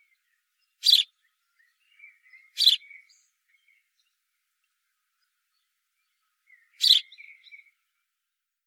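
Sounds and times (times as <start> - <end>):
house sparrow Passer domesticus chirping: 0.6 - 3.8, 6.5 - 7.7.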